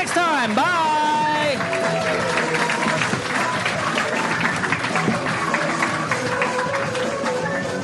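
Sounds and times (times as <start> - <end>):
large audience applauding: 0.0 - 7.7
speech: 0.4 - 0.8
audience cheers and whoops: 1.2 - 3.4.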